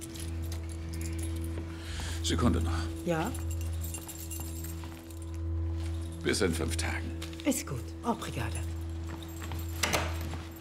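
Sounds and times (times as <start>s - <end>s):
keys jangling and clinking as they are handed over: 0.0s - 1.8s, 2.5s - 6.3s, 8.4s - 10.5s
speech: 2.2s - 3.6s, 6.2s - 8.7s.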